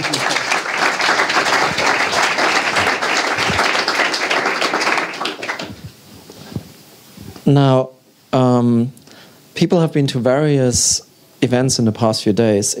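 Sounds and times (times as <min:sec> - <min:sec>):
small audience clapping: 0:00.0 - 0:05.9
speech: 0:07.5 - 0:09.0, 0:09.6 - 0:12.7.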